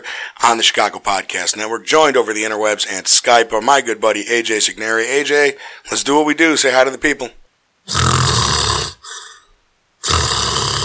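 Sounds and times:
speech: 0.4 - 8.1
person imitating a loud rasping snore: 7.9 - 10.8.

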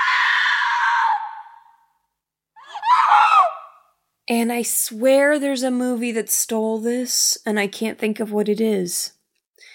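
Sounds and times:
woman screaming on waking up in bed: 0.0 - 1.8, 2.6 - 3.8
speech: 4.3 - 9.2.

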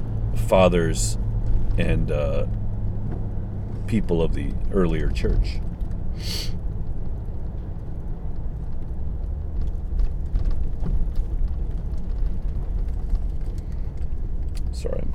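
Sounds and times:
car driving through traffic heard from inside: 0.0 - 15.1
speech: 0.5 - 1.2, 1.8 - 2.6, 3.9 - 6.6, 14.8 - 15.1
short hiss: 6.2 - 6.6.

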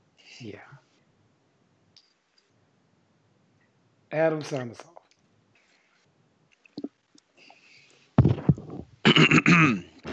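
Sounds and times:
speech: 0.4 - 0.9, 4.1 - 4.9, 9.5 - 9.9
person clearing throat: 8.2 - 10.1.

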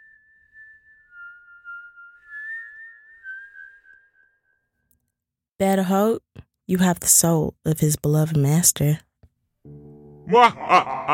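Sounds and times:
eerie whistle of a demon as a spooky story effect: 0.0 - 4.8
speech: 5.6 - 9.1, 10.3 - 11.1
laughter: 10.3 - 11.1.

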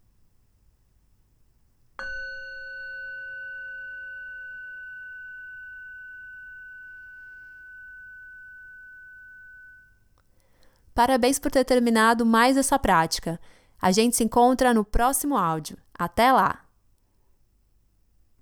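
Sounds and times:
meditation bell ringing: 2.0 - 10.3
speech: 11.0 - 16.6.

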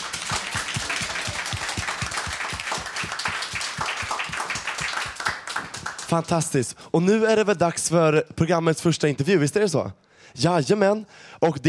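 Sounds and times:
crowd applauding: 0.0 - 6.3
speech: 6.1 - 11.6.

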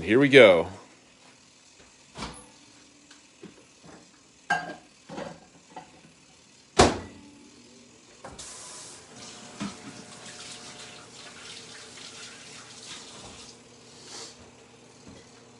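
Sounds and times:
steady mechanical hum of a running microwave: 0.0 - 15.5.

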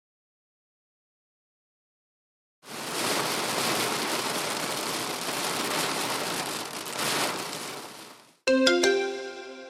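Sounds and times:
steady rain pattering against a glass window: 2.6 - 8.9
short bright electronic chime: 8.5 - 9.6.

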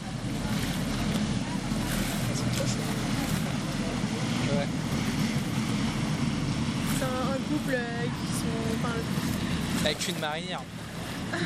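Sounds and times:
constant wash of broadband noise: 0.0 - 11.4
low engine drone from boats moving across the water: 0.0 - 11.4
speech: 9.8 - 11.4
laughter: 11.2 - 11.4.

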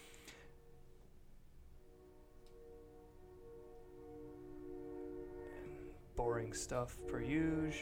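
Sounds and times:
train passing at a distance: 0.0 - 7.7
speech: 6.2 - 7.7.

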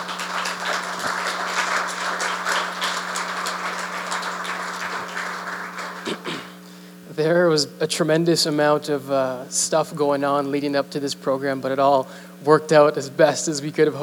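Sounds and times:
roomful of people applauding musicians: 0.0 - 6.6
low electrical hum: 0.0 - 14.0
speech: 7.2 - 14.0.

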